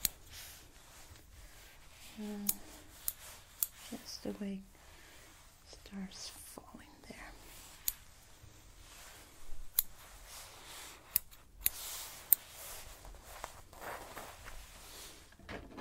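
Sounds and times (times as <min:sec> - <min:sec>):
scissors snipping through hair: 0:00.0 - 0:00.5, 0:02.2 - 0:04.2, 0:07.8 - 0:08.0, 0:09.7 - 0:10.0, 0:11.1 - 0:12.4
soft rustling: 0:00.0 - 0:15.4
speech: 0:02.2 - 0:02.6, 0:04.2 - 0:04.7, 0:05.9 - 0:06.9.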